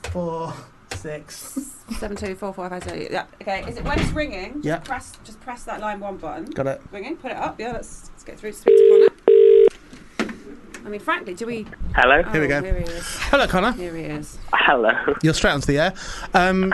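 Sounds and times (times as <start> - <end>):
speech: 0.1 - 9.1, 10.8 - 16.7
telephone keypad tones: 8.7 - 9.7.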